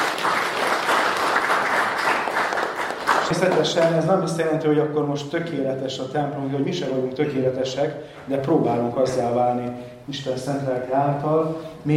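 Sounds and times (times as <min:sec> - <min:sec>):
church audience applauding: 0:00.0 - 0:04.0
speech: 0:03.3 - 0:11.9.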